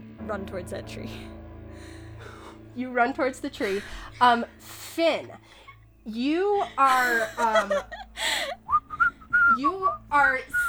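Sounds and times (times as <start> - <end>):
speech: 0.3 - 8.0, 9.6 - 10.6
breathy airy bursts like stifled giggles: 3.6 - 9.5
person whistling a wavering sliding tune: 8.7 - 10.0.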